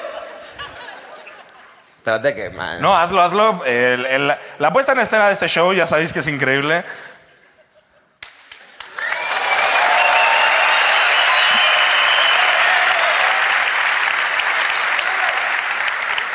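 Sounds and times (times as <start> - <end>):
laughter: 0.0 - 2.0
speech: 2.0 - 7.1
loud sustained applause from a large audience at a live show: 8.5 - 16.3.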